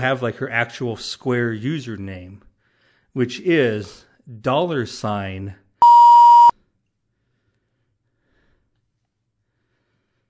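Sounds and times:
speech: 0.0 - 2.5, 3.2 - 5.6
censor bleep over a spoken username: 5.8 - 6.5.

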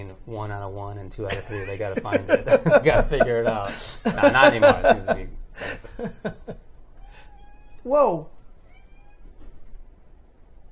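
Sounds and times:
speech: 0.0 - 6.6, 7.8 - 8.4
laughter: 1.3 - 6.6
faint cat meowing: 6.9 - 9.6.

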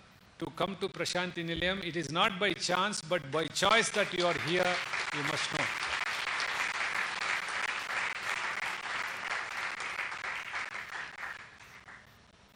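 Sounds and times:
speech: 0.4 - 5.6
sustained applause from a large audience at a post-lunch session: 3.6 - 12.0.

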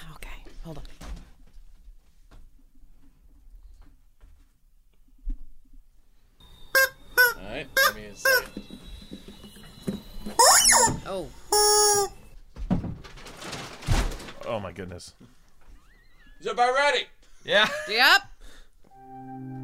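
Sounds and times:
speech: 0.6 - 1.0, 7.6 - 8.6, 11.1 - 12.1, 14.5 - 15.4, 16.4 - 18.3
rubber chicken toy squawking: 6.7 - 8.6, 10.4 - 12.2.

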